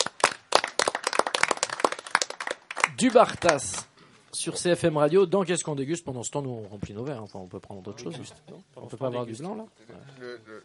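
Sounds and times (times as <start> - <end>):
small group applauding after a folk song performance: 0.0 - 3.9
speech: 3.0 - 10.6.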